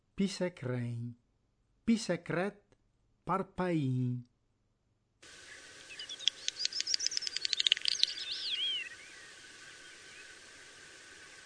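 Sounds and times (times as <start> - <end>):
speech: 0.2 - 1.2, 1.9 - 2.6, 3.2 - 4.3
common snipe calling in sharp dry ticking notes: 5.9 - 10.2.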